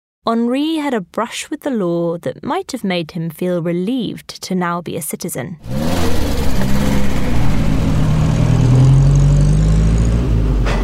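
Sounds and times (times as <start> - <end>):
speech: 0.2 - 6.9
early motor car engine droning along a lane: 5.6 - 10.8.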